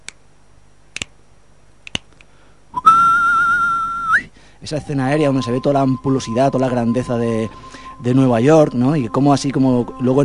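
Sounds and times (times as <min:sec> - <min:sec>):
finger snaps: 0:00.0 - 0:00.2, 0:01.0 - 0:01.2, 0:01.8 - 0:02.3
whistled street-gang calls: 0:02.8 - 0:09.4
speech: 0:04.6 - 0:10.2.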